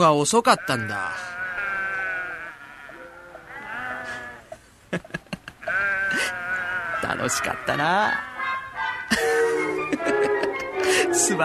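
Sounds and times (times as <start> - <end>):
speech: 0.0 - 1.3, 7.2 - 8.3, 11.1 - 11.4
sheep bleating: 0.4 - 4.6, 5.6 - 8.7
laughter: 4.9 - 6.3, 9.1 - 11.4.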